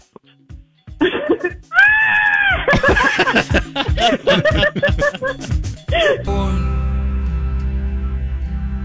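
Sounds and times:
man screaming: 1.8s - 2.7s
laughter: 2.4s - 6.2s
steady humming music bed: 4.6s - 8.8s.

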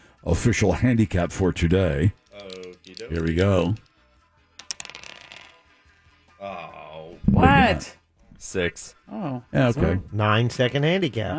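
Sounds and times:
speech: 0.2s - 2.2s, 3.1s - 3.9s, 7.4s - 11.3s
dice clattering on a hard surface: 2.1s - 5.9s.

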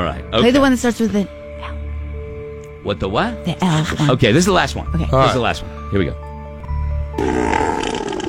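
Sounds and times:
speech: 0.0s - 1.7s, 2.8s - 6.2s, 7.2s - 7.5s
fish belching: 7.2s - 8.2s.

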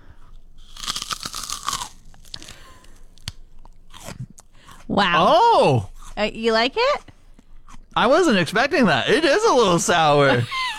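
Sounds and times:
biting into raw rhubarb: 0.6s - 2.6s
speech: 4.9s - 7.1s, 8.0s - 10.6s.

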